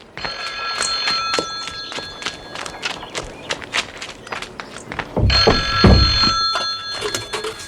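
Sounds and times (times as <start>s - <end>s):
rapid clattering hoof-like taps: 0.0s - 7.6s
telephone bell ringing with a metallic trill: 0.2s - 3.0s, 5.3s - 7.6s.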